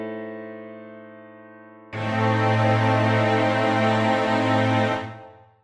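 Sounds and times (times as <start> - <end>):
diminished chord: 2.0 - 5.5.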